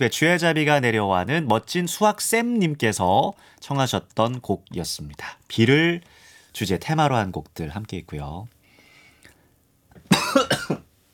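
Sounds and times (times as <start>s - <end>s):
speech: 0.0s - 8.6s
person coughing: 10.0s - 10.9s.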